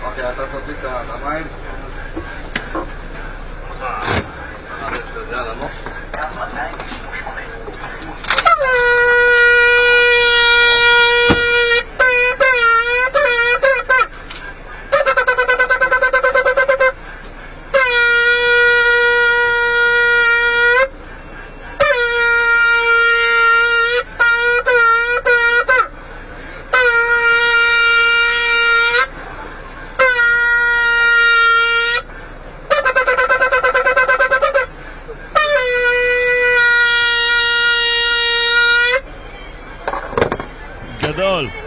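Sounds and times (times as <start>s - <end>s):
steady vehicle rumble: 0.0s - 41.6s
shofar blown by bus driver: 8.3s - 14.1s, 14.9s - 17.0s, 17.7s - 21.0s, 21.8s - 26.0s, 26.7s - 29.1s, 30.0s - 32.1s, 32.7s - 34.7s, 35.3s - 39.1s.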